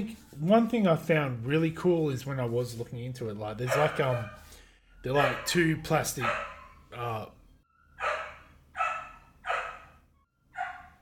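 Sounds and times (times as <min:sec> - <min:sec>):
speech: 0:00.0 - 0:04.4, 0:05.0 - 0:07.4
dog barking: 0:03.6 - 0:04.5, 0:05.1 - 0:06.9, 0:08.0 - 0:11.0.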